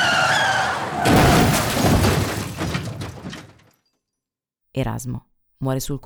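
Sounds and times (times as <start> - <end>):
Alfa car tires squealing while skidding at nearly 200 an hour: 0.0 - 3.0
car crash debris crunching and rattling: 0.0 - 3.9
Alfa car crashing into a nearly stopped car: 0.0 - 4.0
glass shattering in car crash: 0.0 - 4.2
speech: 4.8 - 6.0.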